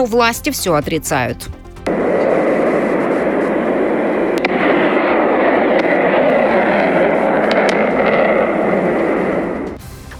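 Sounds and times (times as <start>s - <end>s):
speech: 0.0s - 1.6s
distant explosions in a city at night: 1.8s - 9.8s
sharp cracks: 1.8s - 9.8s.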